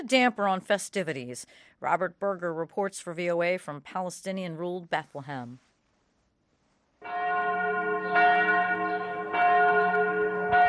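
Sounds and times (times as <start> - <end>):
speech: 0.0 - 5.7
church bells ringing: 7.0 - 10.6.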